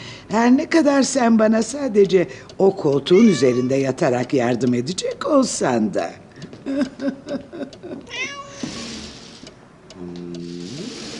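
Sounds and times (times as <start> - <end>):
speech: 0.3 - 8.7
cat meowing: 3.1 - 3.9, 8.1 - 9.2
laughter: 6.7 - 8.1.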